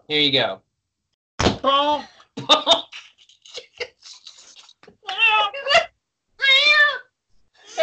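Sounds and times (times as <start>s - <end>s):
speech: 0.1s - 0.7s, 1.6s - 3.0s
laughter: 2.4s - 4.6s
cat meowing in loud drawn-out cries: 6.4s - 7.0s.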